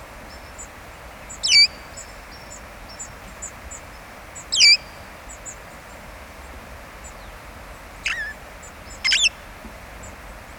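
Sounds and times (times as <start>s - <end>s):
red-fronted parrot Poicephalus gulielmi squawking: 8.1s - 8.4s, 9.0s - 9.4s
high ticking chirps: 8.9s - 9.4s.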